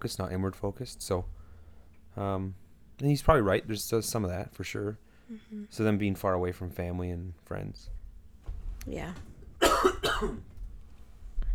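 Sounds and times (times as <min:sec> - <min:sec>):
speech: 0:00.0 - 0:01.4, 0:02.2 - 0:08.0, 0:08.8 - 0:10.5
harsh coughs: 0:09.6 - 0:10.5.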